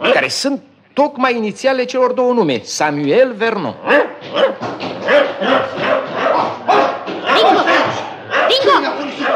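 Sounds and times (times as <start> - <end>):
speech: 0.2 - 6.0
dog barking and snarling: 3.8 - 9.3
excited human voices shouting: 3.9 - 9.3.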